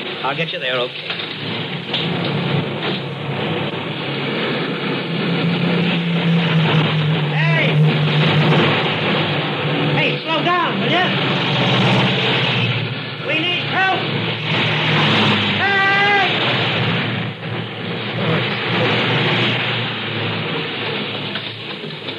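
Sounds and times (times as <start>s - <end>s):
fast highway traffic rushing past: 0.0s - 22.1s
speech: 0.2s - 2.2s.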